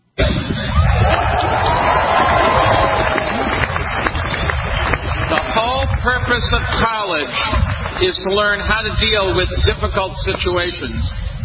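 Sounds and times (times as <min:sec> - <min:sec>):
crowd murmur: 0:00.2 - 0:11.4
audience clapping: 0:01.1 - 0:08.8
speech: 0:06.4 - 0:11.3.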